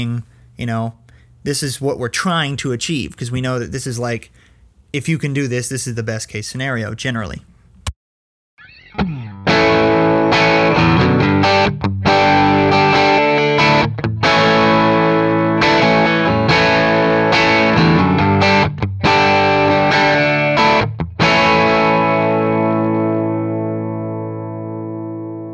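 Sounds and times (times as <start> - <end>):
speech: 0.0 - 7.5
distorted electric guitar strumming chords through a short two-foot speaker cable: 8.6 - 25.5.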